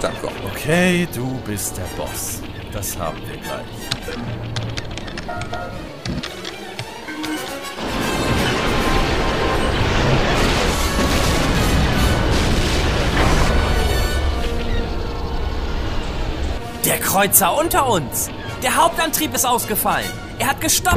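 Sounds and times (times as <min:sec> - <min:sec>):
speech: 0:00.0 - 0:04.7, 0:05.3 - 0:06.0, 0:16.9 - 0:20.9
sharp crackles: 0:00.0 - 0:16.6
loud explosion: 0:07.8 - 0:16.5.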